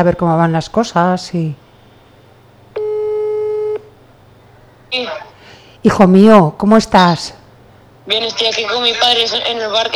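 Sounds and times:
speech: 0.0s - 1.6s, 4.9s - 7.4s, 8.1s - 9.9s
faint low hum: 0.0s - 9.9s
telephone ringback beep while a call is placed: 2.8s - 3.8s.

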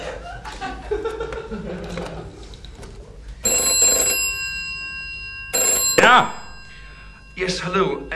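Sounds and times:
laughter: 0.0s - 2.5s
telephone ringing while placing a call: 3.4s - 8.1s
speech: 6.1s - 6.4s, 7.4s - 8.1s.

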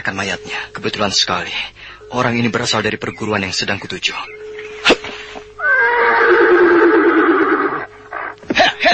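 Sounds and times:
speech: 0.0s - 4.5s
horse neighing: 5.6s - 8.8s.

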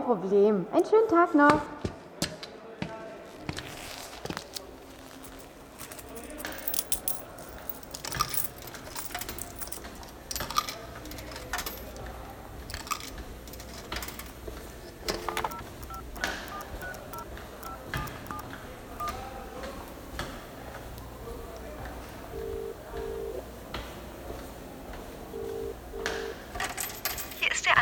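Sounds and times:
speech: 0.1s - 1.9s
coins dropping into a coin payphone: 4.3s - 18.4s, 26.0s - 27.7s
coin payphone number being dialed with short button tones: 15.0s - 19.4s, 22.3s - 23.4s, 25.3s - 26.5s.

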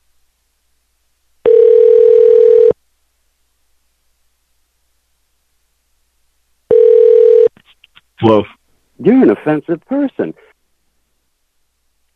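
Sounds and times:
ringback tone of an outgoing call to a man's phone: 1.4s - 2.8s, 6.7s - 7.5s
speech: 8.2s - 10.5s.

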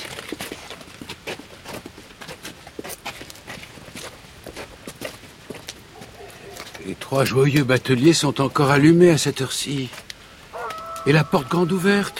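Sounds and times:
quick footsteps hurrying through the dark at night: 0.0s - 7.4s
speech: 7.0s - 10.0s, 11.0s - 12.1s.

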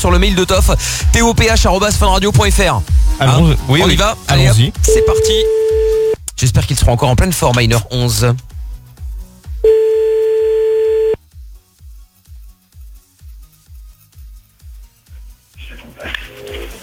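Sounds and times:
speech: 0.0s - 5.8s, 6.4s - 8.5s
telephone dial tone: 4.9s - 6.2s, 9.6s - 11.2s
regular low pulses on the telephone line: 9.7s - 11.2s.

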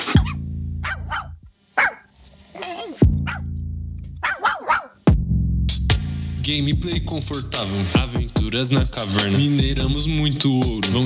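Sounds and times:
puppy yapping: 0.2s - 3.4s, 4.2s - 5.0s
deep sustained bass booms: 3.0s - 4.2s, 5.1s - 11.0s
speech: 6.5s - 11.0s.

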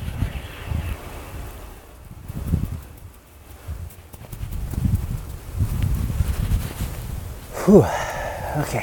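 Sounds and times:
soft rush of wind: 0.0s - 8.8s
person walking in snowshoes through snow: 2.3s - 7.2s
speech: 7.7s - 8.0s, 8.6s - 8.8s.

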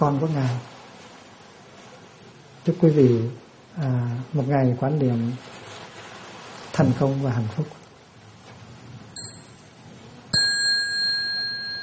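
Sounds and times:
speech: 0.0s - 0.7s, 2.6s - 5.6s, 6.8s - 7.8s
meditation bell struck at a Buddhist day of mindfulness: 9.2s - 11.8s.

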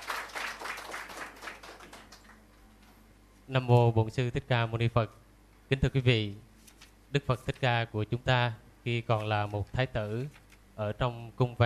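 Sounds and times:
audience applause welcoming a monk at a Buddhist dharma talk: 0.0s - 2.4s
speech: 3.5s - 6.5s, 7.1s - 11.6s.

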